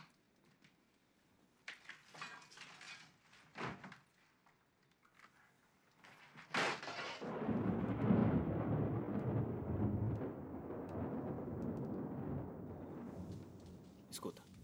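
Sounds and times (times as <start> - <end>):
deep rolling rumble of thunder from a storm: 7.2 - 14.6
hushed voices speaking: 14.1 - 14.6.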